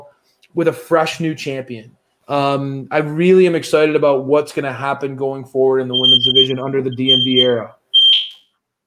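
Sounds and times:
speech: 0.5 - 7.8
smoke alarm beep: 5.9 - 8.5.

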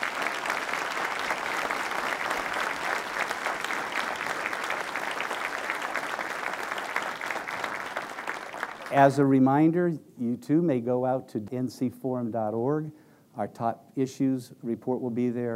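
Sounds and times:
audience applause: 0.0 - 9.1
speech: 8.9 - 15.5.

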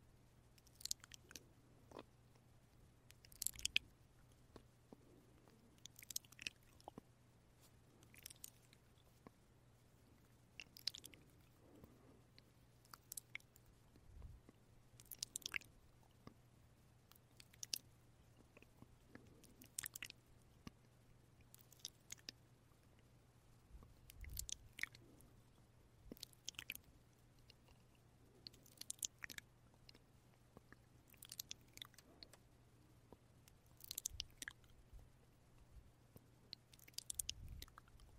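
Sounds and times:
wet mouth sounds and kiss-like smacks: 0.6 - 2.1, 3.1 - 3.9, 4.5 - 7.0, 7.6 - 9.4, 10.2 - 16.4, 17.1 - 20.8, 21.5 - 22.4, 23.8 - 25.2, 26.1 - 30.0, 30.6 - 32.4, 33.6 - 34.7, 36.5 - 38.1.

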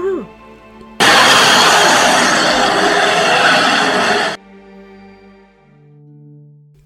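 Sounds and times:
monster roaring loudly: 1.0 - 4.4.

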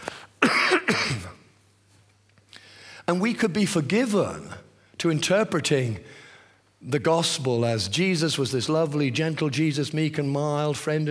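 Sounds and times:
harsh coughs: 0.4 - 1.4
speech: 3.1 - 6.2, 6.8 - 11.1.

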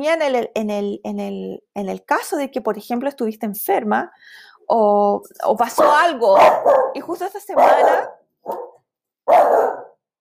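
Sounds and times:
speech: 0.0 - 8.7, 9.3 - 9.8
dog barking: 5.8 - 10.0.

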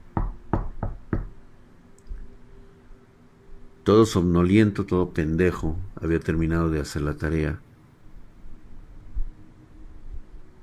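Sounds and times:
knocking on a wooden bedroom door: 0.2 - 1.4
speech: 3.9 - 7.7.

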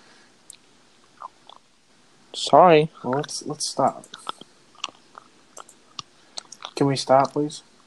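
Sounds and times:
person chewing something crunchy: 0.5 - 1.7, 4.0 - 7.4
speech: 2.3 - 4.2, 6.8 - 7.7.

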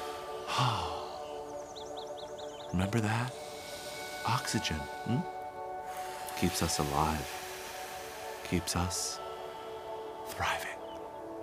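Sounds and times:
deep breath drawn in through the nose during a diaphragm breathing exercise: 0.0 - 1.6, 3.3 - 10.3
speech: 2.7 - 3.4, 4.2 - 5.4, 6.4 - 7.4, 8.5 - 9.2, 10.4 - 10.8.

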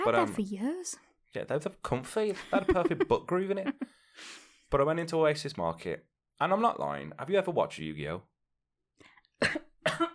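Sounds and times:
speech: 0.0 - 8.3
laughter: 2.3 - 3.8
person coughing sharply: 9.4 - 10.1.

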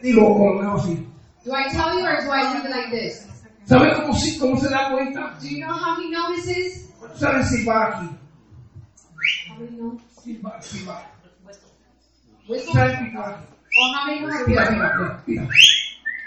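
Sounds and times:
speech: 0.0 - 8.2, 9.2 - 11.1, 12.5 - 15.8
person whistling short high notes: 9.2 - 9.5, 15.5 - 16.2.

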